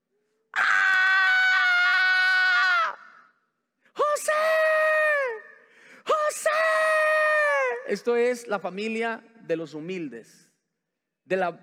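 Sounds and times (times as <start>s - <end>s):
person screaming and wailing: 0.6s - 3.3s, 4.0s - 7.9s
speech: 7.9s - 10.5s, 11.3s - 11.6s.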